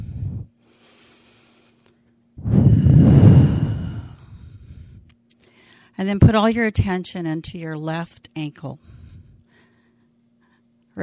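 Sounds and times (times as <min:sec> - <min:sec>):
one deep breath: 0:00.0 - 0:01.8, 0:02.4 - 0:06.0, 0:08.8 - 0:10.7
short breathy sound: 0:02.4 - 0:05.0
speech: 0:06.0 - 0:09.0.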